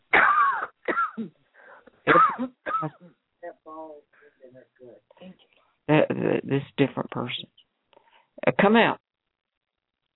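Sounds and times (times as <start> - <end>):
people coughing and clearing throats: 0.1 - 1.4, 2.1 - 3.2
speech: 1.2 - 1.4, 7.2 - 7.5, 8.7 - 9.0
talking: 3.4 - 5.4.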